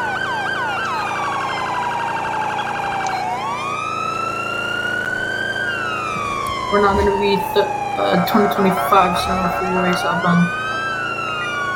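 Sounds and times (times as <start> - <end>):
emergency vehicle yelp siren wailing in a tunnel: 0.0 - 11.7
steady rumble: 6.2 - 10.4
speech: 6.7 - 10.6.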